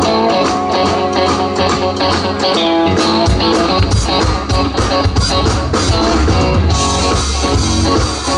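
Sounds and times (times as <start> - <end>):
drum break: 0.0 - 8.3.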